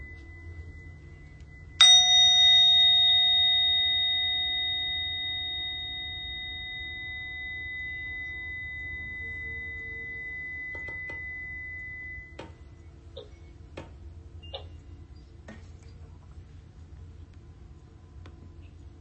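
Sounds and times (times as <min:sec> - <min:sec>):
meditation bell ringing: 0:00.0 - 0:13.2
soft low hum: 0:00.0 - 0:18.9.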